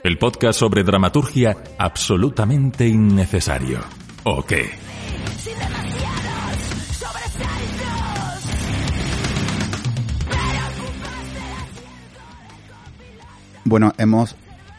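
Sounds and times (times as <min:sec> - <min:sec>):
speech: 0:00.2 - 0:05.4, 0:13.7 - 0:14.4
heavy distorted guitars in a rock track: 0:02.8 - 0:13.7
harsh shouted vocals in a rock track: 0:03.4 - 0:09.6, 0:10.2 - 0:13.8
pounding drums in a rock track: 0:05.0 - 0:11.4.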